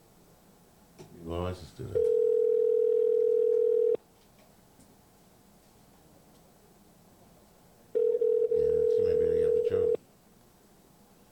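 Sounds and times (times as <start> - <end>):
person talking: 1.1 - 2.2, 8.5 - 10.0
telephone ringback tone: 2.0 - 4.0, 8.0 - 10.0.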